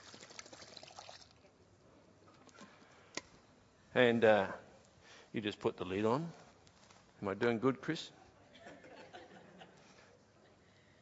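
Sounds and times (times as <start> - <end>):
premixed ingredients pouring into the pot of a cooking machine: 0.0 - 1.4
speech: 4.0 - 4.6, 5.3 - 6.4, 7.2 - 8.2
laughter: 8.4 - 9.9.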